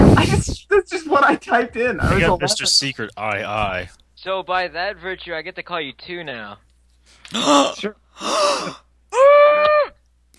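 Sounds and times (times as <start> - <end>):
speech: 0.8 - 10.0
gasping breaths: 7.1 - 8.9.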